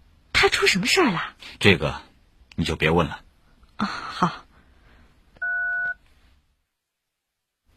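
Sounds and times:
faint hiss: 0.0s - 7.7s
speech: 0.4s - 3.2s, 3.8s - 4.4s
telephone keypad dual-pitched tone while dialing: 5.4s - 6.0s.

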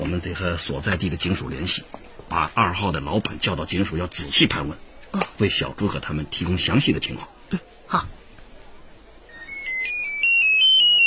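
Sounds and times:
speech: 0.2s - 8.2s
mobile phone ringtone electronic melody: 9.3s - 11.0s.

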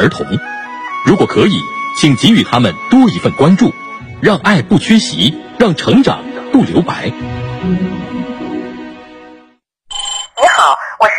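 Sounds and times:
speech: 0.0s - 8.2s
phone ringtone for an incoming call: 9.9s - 10.5s.

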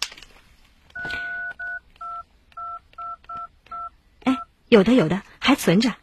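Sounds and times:
electronic phone keypad beeps: 1.0s - 3.9s
speech: 4.7s - 6.0s.

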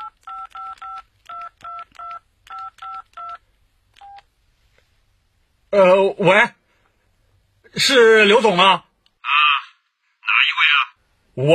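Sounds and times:
mobile phone keypad beeping touch-tones: 0.0s - 3.4s
speech: 5.7s - 6.6s, 7.7s - 8.8s, 11.4s - 11.5s.

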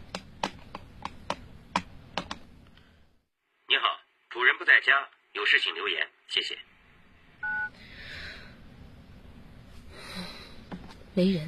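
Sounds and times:
speech: 4.6s - 6.7s, 11.2s - 11.4s
home telephone keypad tone: 7.4s - 7.7s.

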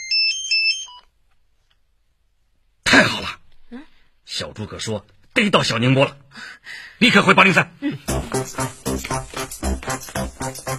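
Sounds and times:
mobile phone ringtone with a bright electronic melody: 0.0s - 1.1s
speech: 4.4s - 10.7s.

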